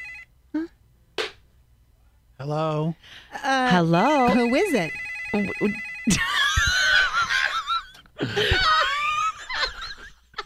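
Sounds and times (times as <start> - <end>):
electronic ringback tone over a phone line: 0.0 - 0.3, 4.0 - 6.6
speech: 2.4 - 6.5, 8.2 - 8.8
laughter: 6.1 - 10.4.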